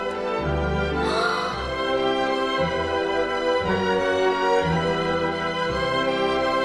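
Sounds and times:
orchestral music led by string instruments: 0.0s - 6.6s.

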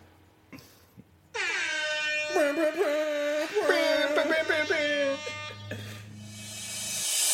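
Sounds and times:
loud brassy air horn blaring: 1.4s - 2.9s, 4.8s - 6.6s
laughter: 2.4s - 5.4s
speech: 2.6s - 3.0s.

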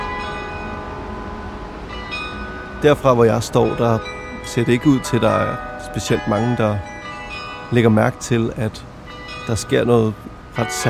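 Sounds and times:
church bells ringing: 0.0s - 10.8s
city traffic noise: 0.0s - 10.8s
speech: 2.8s - 6.9s, 7.7s - 8.9s, 9.5s - 10.8s.

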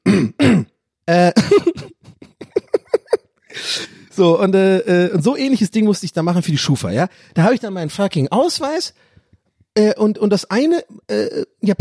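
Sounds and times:
man clearing his throat: 0.0s - 1.8s
speech: 4.2s - 9.1s, 9.8s - 11.7s.

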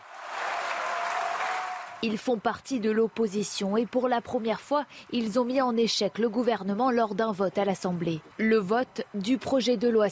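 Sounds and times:
many deputies applauding in the Assembly's hemicycle chamber after winning a vote: 0.0s - 2.0s
speech: 2.0s - 10.1s.

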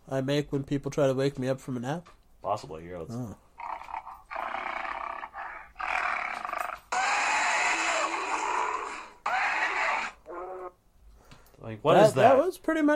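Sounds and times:
speech: 0.1s - 3.4s, 11.6s - 12.9s
video game dinosaur shrieking roars: 3.6s - 10.8s.

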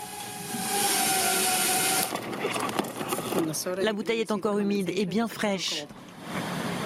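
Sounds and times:
delivery drone rotors whirring while approaching to drop a package in a garden: 0.0s - 3.4s
speech: 3.4s - 6.0s.

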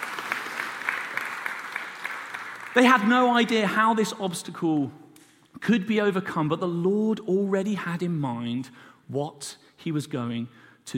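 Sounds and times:
sharp hand claps: 0.0s - 3.1s
crowd applauding: 0.0s - 3.5s
speech: 2.8s - 5.0s, 5.6s - 10.9s.

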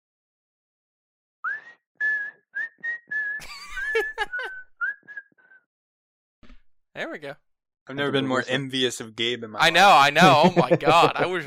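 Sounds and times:
person whistling a film theme melody: 1.5s - 5.7s
laughter: 3.4s - 4.5s, 9.8s - 11.4s
speech: 7.0s - 11.4s.

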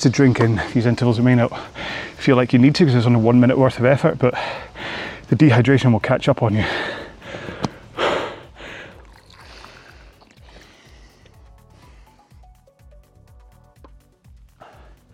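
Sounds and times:
speech: 0.0s - 7.0s
steady low rhythmic whooshing: 0.0s - 15.1s
heavy gasping breaths after a one-minute exercise interval: 1.5s - 2.2s, 4.3s - 5.3s, 6.5s - 12.6s, 14.5s - 15.1s.

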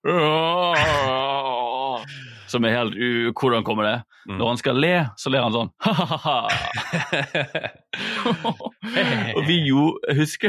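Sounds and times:
voice imitating a man wailing in tears: 0.0s - 2.2s, 8.9s - 9.6s
speech: 2.5s - 10.4s
laughter: 5.8s - 10.4s.

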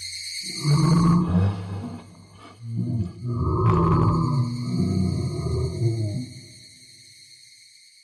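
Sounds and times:
deafening monstrous roar: 0.5s - 6.3s.

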